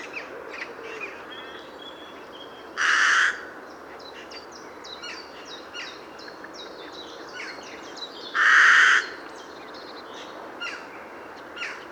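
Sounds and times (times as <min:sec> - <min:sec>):
Corvus corone carrion crow cawing: 0:08.4 - 0:09.1.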